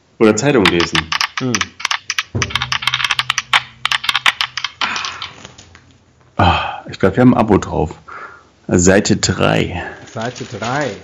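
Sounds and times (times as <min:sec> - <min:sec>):
speech: 0:00.2 - 0:02.4, 0:06.9 - 0:08.1, 0:08.7 - 0:11.0
dice clattering and tumbling across a hard surface: 0:00.7 - 0:05.5.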